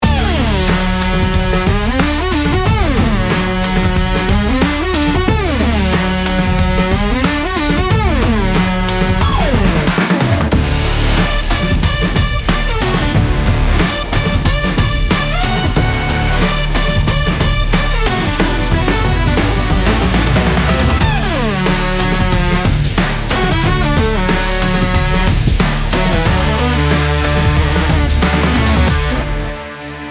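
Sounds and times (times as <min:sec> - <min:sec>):
instrumental AI social media music: 0:00.0 - 0:30.0.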